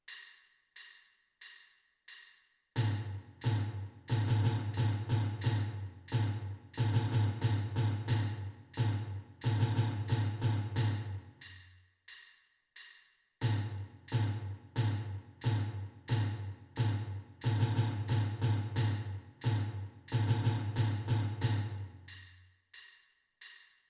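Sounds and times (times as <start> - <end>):
bass drum: 2.8 - 11.3, 13.4 - 22.1.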